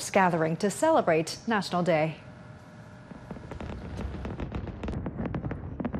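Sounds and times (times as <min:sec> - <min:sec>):
speech: 0:00.1 - 0:02.3
fireworks display bursting with cracks, pops and rumbling roar: 0:02.9 - 0:05.9.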